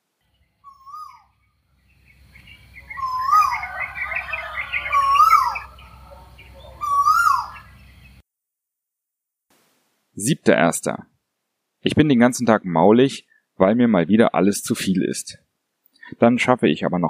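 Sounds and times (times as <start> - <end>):
Asian koel calling: 0.6 - 1.3, 2.7 - 7.8
speech: 10.2 - 11.1, 11.8 - 15.5, 16.1 - 17.0.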